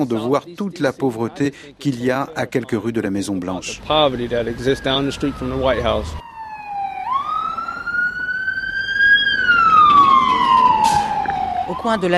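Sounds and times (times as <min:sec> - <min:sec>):
speech: 0:00.0 - 0:06.3, 0:11.8 - 0:12.1
police car siren wailing in the street: 0:03.9 - 0:12.1.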